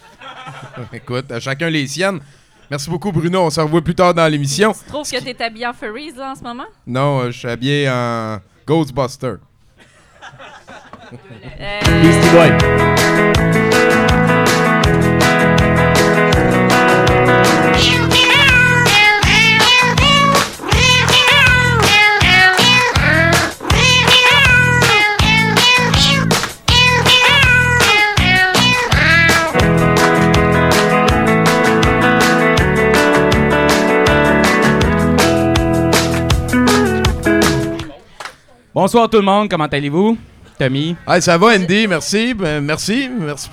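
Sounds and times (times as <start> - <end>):
laughter: 0.0 - 1.1, 9.8 - 12.5
speech: 0.8 - 9.5, 11.1 - 13.9, 38.8 - 43.5
steady rhythmic backing music: 11.7 - 38.0
song built from pitched cat meows: 17.7 - 29.6.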